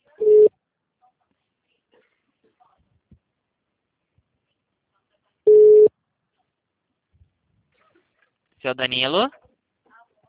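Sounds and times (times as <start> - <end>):
telephone busy tone after a dropped call: 0.2 - 0.5, 5.5 - 5.9
speech: 8.6 - 9.4.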